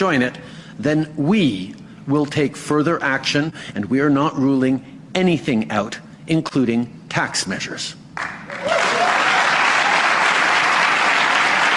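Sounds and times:
speech: 0.0s - 8.3s
crowd applause: 8.2s - 11.7s.

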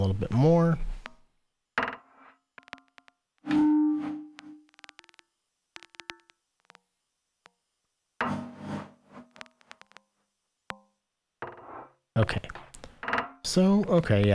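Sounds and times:
speech: 0.0s - 0.9s, 12.2s - 12.6s, 13.4s - 14.3s
sharp high-pitched clicks processed with EQ and reverb: 2.6s - 6.9s, 9.2s - 10.0s.

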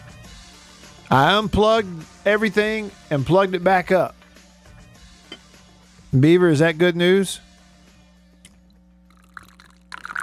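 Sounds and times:
speech: 1.1s - 4.2s, 6.1s - 7.5s
coffee pouring into a cup: 8.5s - 10.2s.

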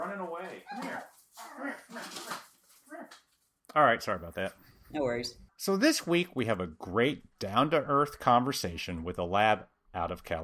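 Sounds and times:
dog whining: 0.6s - 2.3s
speech: 3.8s - 10.4s.

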